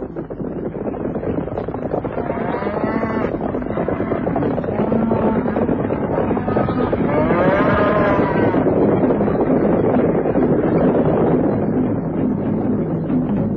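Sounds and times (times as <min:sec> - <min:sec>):
steady rumbling wind-like background: 0:00.0 - 0:13.5
cattle mooing: 0:02.2 - 0:05.6, 0:06.4 - 0:08.6.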